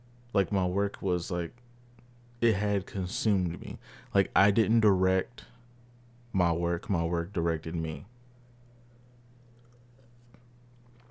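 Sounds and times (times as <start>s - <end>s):
steady low electrical hum: 0.0s - 11.0s
speech: 0.3s - 1.6s, 2.4s - 5.5s, 6.3s - 8.1s
person sipping a drink: 9.4s - 11.0s.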